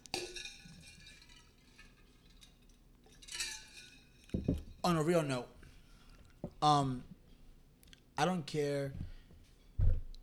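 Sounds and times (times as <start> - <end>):
glasses clinking in a toast: 0.1 - 4.8
speech: 4.4 - 5.6, 6.6 - 7.1, 8.2 - 9.1.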